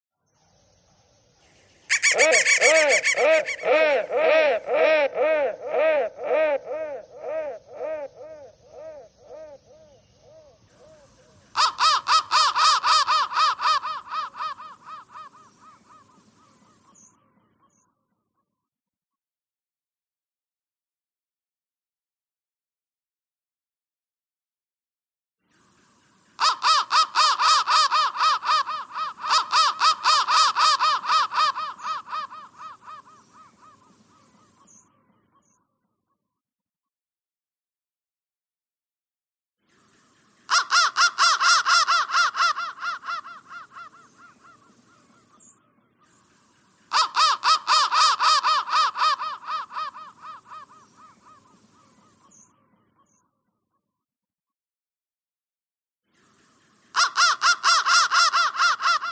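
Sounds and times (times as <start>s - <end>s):
crow calling: 1.9s - 10.6s, 11.6s - 16.0s, 26.4s - 34.3s, 40.5s - 45.3s, 46.9s - 51.6s, 56.9s - 59.1s.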